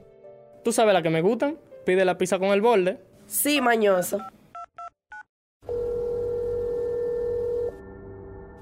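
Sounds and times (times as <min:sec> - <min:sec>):
speech: 0:00.7 - 0:04.4
glitching telephone dial tone of a malfunctioning phone: 0:05.1 - 0:07.8.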